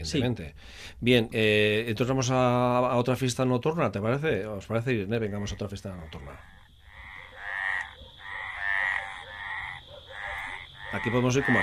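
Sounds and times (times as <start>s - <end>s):
speech: 0.0s - 6.6s, 10.9s - 11.6s
frog croaking: 5.0s - 11.6s.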